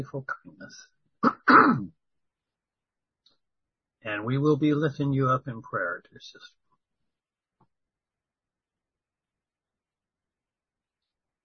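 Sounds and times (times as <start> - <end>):
speech: 0.0 - 0.9, 4.0 - 6.6
person coughing from a tickle in the throat: 1.2 - 1.9.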